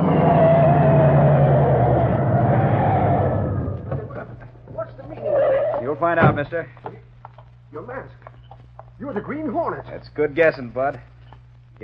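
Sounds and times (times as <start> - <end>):
car engine roaring on a highway while speeding up: 0.0 - 4.3
speech: 6.1 - 6.9, 7.7 - 8.2, 9.0 - 11.1.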